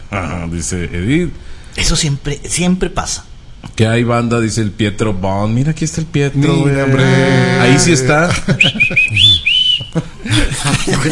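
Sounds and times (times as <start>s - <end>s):
speech: 0.1s - 11.1s
laughter: 6.6s - 11.1s
person whistling: 8.6s - 10.0s.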